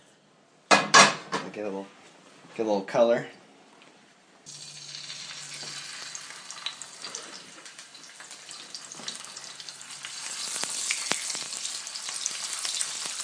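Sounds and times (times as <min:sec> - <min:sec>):
speech: 0:01.5 - 0:02.0, 0:02.6 - 0:03.4
octopus or squid searing in a smoking-hot pan with rice bran oil: 0:04.5 - 0:13.2.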